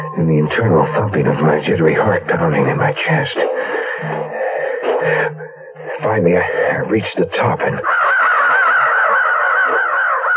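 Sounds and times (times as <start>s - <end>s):
speech: 0.2s - 4.2s, 5.0s - 5.4s, 6.0s - 8.1s
flock of ravens cawing taking off above an arroyo: 2.5s - 6.9s, 7.6s - 10.3s.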